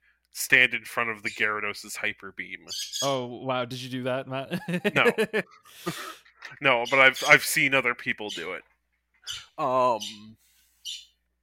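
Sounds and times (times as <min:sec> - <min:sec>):
speech: 0:00.4 - 0:08.7, 0:09.3 - 0:11.0
pet parrot chirping and squawking: 0:02.6 - 0:03.2, 0:05.5 - 0:08.6, 0:09.2 - 0:11.2
laughter: 0:04.4 - 0:07.2.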